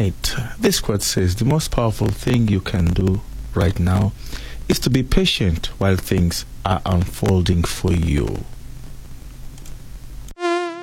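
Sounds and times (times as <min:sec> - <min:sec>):
speech: 0:00.0 - 0:08.6
rough noisy hiss: 0:00.0 - 0:10.3
mosquito buzzing whine: 0:10.3 - 0:10.8.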